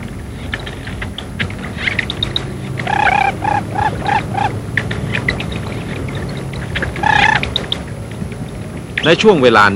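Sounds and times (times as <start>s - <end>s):
newly hatched ducklings cheeping and chattering: 2.0s - 7.9s
lesser whistling duck whistled calls: 2.8s - 4.6s, 7.0s - 7.8s
speech: 9.0s - 9.7s.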